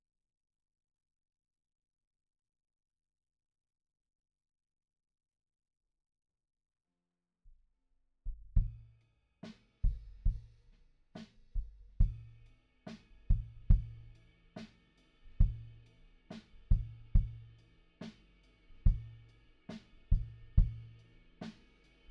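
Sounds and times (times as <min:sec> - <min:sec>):
kick drum: 0:08.3 - 0:08.9, 0:09.9 - 0:10.5, 0:13.3 - 0:14.0, 0:16.7 - 0:17.4, 0:18.9 - 0:19.2, 0:20.1 - 0:20.8.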